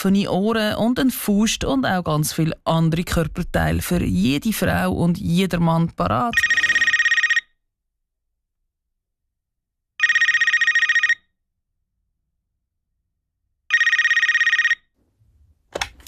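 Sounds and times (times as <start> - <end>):
speech: 0.0 - 6.6
telephone ringing with an incoming call: 6.1 - 7.6, 10.0 - 11.3, 13.7 - 14.9.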